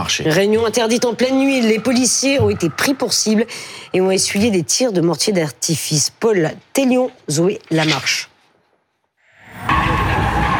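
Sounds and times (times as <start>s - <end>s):
speech: 0.0s - 8.3s
car tires squealing in circular drifts in a hypermarket parking lot at night: 9.6s - 10.5s.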